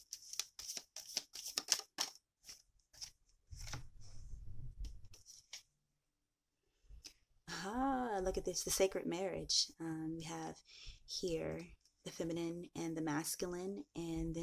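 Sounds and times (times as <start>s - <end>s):
tarot cards being handled and drawn from a deck: 0.0s - 3.9s
speech: 7.6s - 14.4s.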